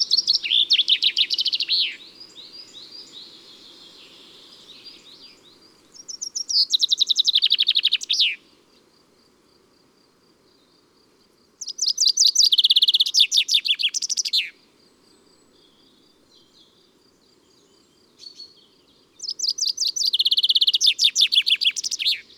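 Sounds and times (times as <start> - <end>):
common chaffinch singing: 0.0 - 8.4, 11.6 - 14.5, 17.6 - 22.3.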